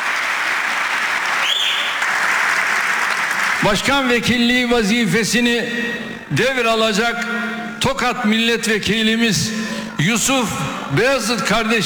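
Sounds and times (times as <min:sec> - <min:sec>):
many hands applauding in parliament: 0:00.0 - 0:04.3
speech: 0:03.6 - 0:11.8.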